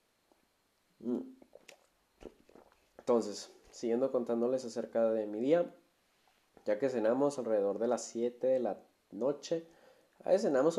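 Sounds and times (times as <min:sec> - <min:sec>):
speech: 0:01.0 - 0:02.4, 0:03.1 - 0:05.8, 0:06.6 - 0:10.7
swallow: 0:01.0 - 0:03.1
wet mouth clicks: 0:01.0 - 0:03.1
sipping water: 0:01.0 - 0:03.8.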